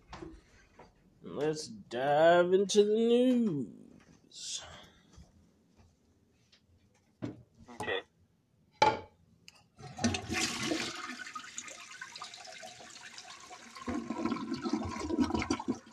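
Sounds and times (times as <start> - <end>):
speech: 1.4 - 4.8
toilet flush water rushing and gurgling as the tank refills: 9.8 - 15.9.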